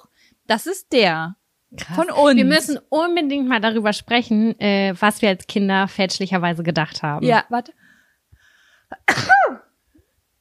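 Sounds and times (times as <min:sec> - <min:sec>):
speech: 0:00.5 - 0:07.8, 0:09.0 - 0:09.6
sneeze: 0:08.9 - 0:09.8.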